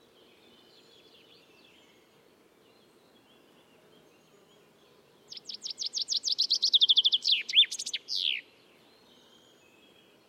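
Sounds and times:
common chaffinch singing: 5.2s - 8.5s.

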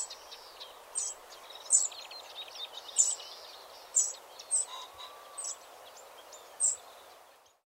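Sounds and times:
Eurasian wren calling with high hard ticks: 0.0s - 2.1s, 2.9s - 5.7s
constant hiss: 0.0s - 7.6s.

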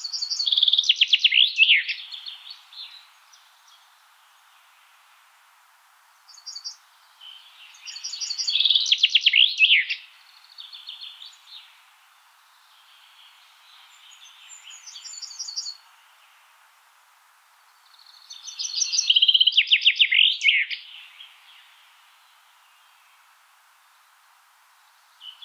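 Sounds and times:
common chaffinch Fringilla coelebs singing: 0.0s - 4.7s, 6.3s - 11.8s, 12.4s - 16.4s, 17.6s - 23.0s.

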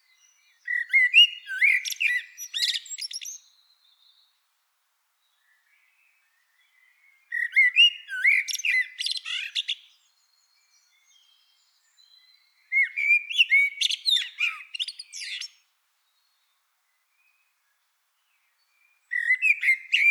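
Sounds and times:
common blackbird Turdus merula singing: 0.0s - 4.3s, 6.3s - 15.6s, 18.5s - 20.0s.

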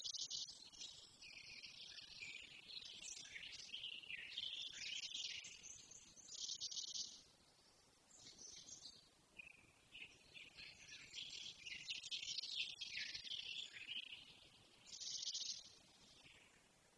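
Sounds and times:
Eurasian blackcap Sylvia atricapilla singing quick varied warbling: 0.0s - 16.7s.

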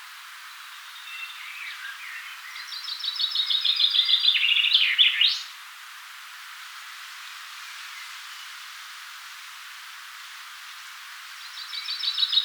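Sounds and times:
Fringilla coelebs song with rattling run of bright notes: 0.6s - 5.5s, 11.4s - 12.4s.

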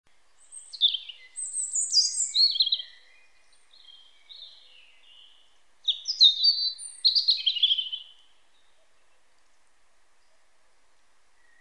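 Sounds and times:
European robin Erithacus rubecula song: 0.1s - 9.4s.

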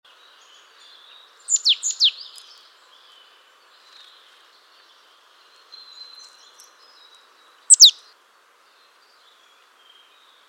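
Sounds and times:
marsh tit Poecile palustris calling: 1.5s - 2.4s, 7.7s - 8.0s.

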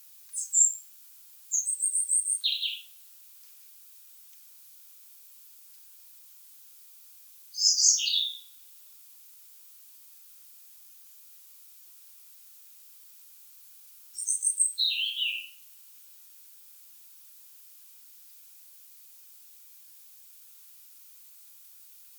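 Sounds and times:
European robin Erithacus rubecula singing: 0.3s - 0.8s, 1.5s - 2.9s, 7.6s - 8.6s, 14.2s - 15.6s.

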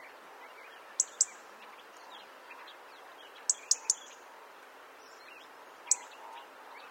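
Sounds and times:
soft steady background hiss: 0.0s - 6.9s
Erithacus rubecula European robin sharp high ticking calls: 1.0s - 1.4s, 3.4s - 4.2s, 5.8s - 6.5s.

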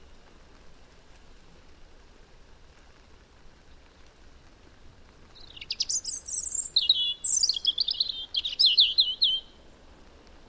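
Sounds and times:
European robin Erithacus rubecula singing whistles and twittering trills: 5.3s - 9.6s.

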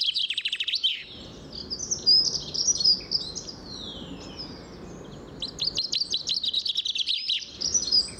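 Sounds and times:
common chaffinch Fringilla coelebs calls: 0.0s - 8.1s.

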